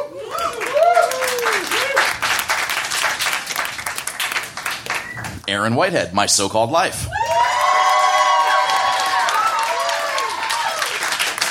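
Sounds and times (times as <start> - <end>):
whoops and cheering voices: 0.0 - 2.2, 7.0 - 11.1
crowd applause: 0.0 - 5.4, 7.2 - 11.4
speech: 5.5 - 7.4.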